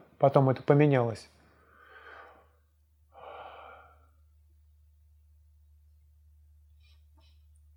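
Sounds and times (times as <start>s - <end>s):
speech: 0.2s - 1.4s
slow airy breathing in a meditation breathing practice: 1.4s - 4.4s.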